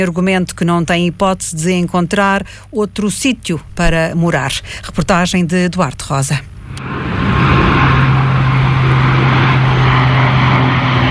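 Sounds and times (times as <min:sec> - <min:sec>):
speech: 0:00.0 - 0:07.6
aircraft engine roar passing overhead: 0:06.4 - 0:11.0.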